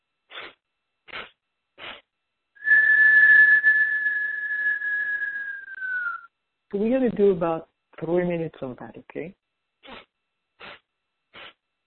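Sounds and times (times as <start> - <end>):
long steady whistled exhale: 0.3 - 2.0, 2.6 - 6.3, 11.4 - 11.6
sniffs through the nose: 0.3 - 2.1, 9.8 - 11.6
speech: 6.7 - 9.4.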